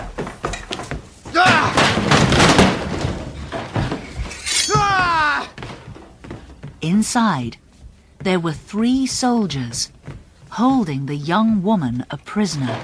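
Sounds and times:
raised shouting voices: 1.3s - 1.8s, 4.5s - 5.6s
front door smashed in with a splintering crash: 1.3s - 5.9s
speech: 6.9s - 7.6s, 8.2s - 12.8s.

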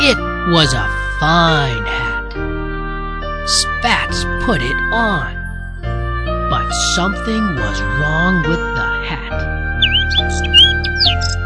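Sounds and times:
speech: 0.1s - 2.0s, 3.5s - 5.4s, 6.7s - 9.5s
sustained musical tones: 0.1s - 11.4s
bird chirping: 9.6s - 11.4s.

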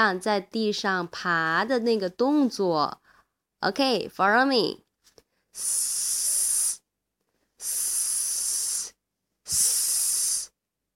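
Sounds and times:
person talking: 0.0s - 3.0s, 3.6s - 4.8s
person imitating a snake hiss for the letter s: 5.5s - 6.9s, 7.6s - 10.9s.

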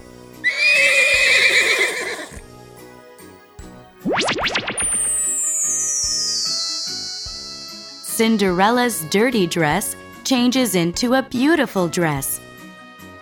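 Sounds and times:
horse whinnying: 0.4s - 2.4s
rising musical sweeps: 4.0s - 9.4s
long high shimmering tone gliding downward: 4.1s - 9.0s
speech: 8.2s - 12.4s.

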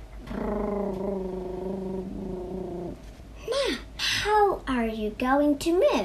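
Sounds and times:
cat purring: 0.2s - 3.1s
speech: 4.8s - 6.0s.

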